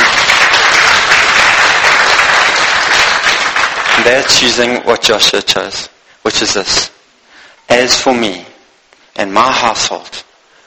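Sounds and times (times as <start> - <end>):
applause from a sizable audience: 0.0 - 4.6
speech: 4.1 - 6.9, 7.7 - 8.5, 9.2 - 10.3.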